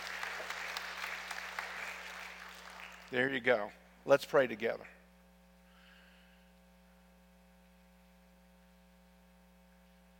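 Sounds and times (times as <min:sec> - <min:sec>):
congregation clapping: 0:00.0 - 0:03.5
low electrical hum: 0:00.0 - 0:10.1
speech: 0:03.1 - 0:05.0.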